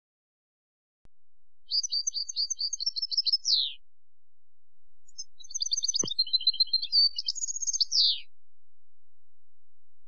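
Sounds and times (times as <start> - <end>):
European goldfinch song: 1.7 - 3.9, 5.1 - 8.4.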